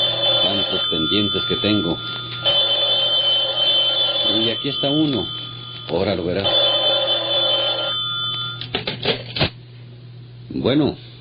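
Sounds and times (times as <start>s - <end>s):
metallic telephone bell ringing: 0.0s - 8.8s
speech: 1.1s - 2.5s, 4.4s - 6.7s, 10.6s - 11.0s.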